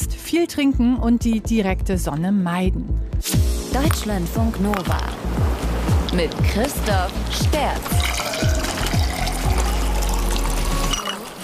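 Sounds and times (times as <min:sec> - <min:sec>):
speech: 0:00.3 - 0:05.5, 0:06.1 - 0:08.2
drink glugging and splashing into a glass: 0:06.0 - 0:11.4.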